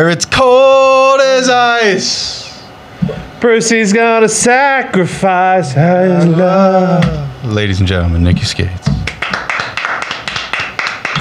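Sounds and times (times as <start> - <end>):
speech: 0.0 - 2.4, 3.0 - 9.0
single person clapping hands: 9.0 - 11.1.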